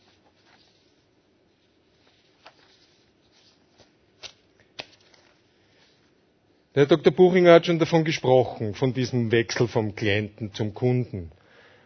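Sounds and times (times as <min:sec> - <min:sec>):
paper pages being leafed through: 0:00.0 - 0:06.1
speech: 0:06.8 - 0:11.4.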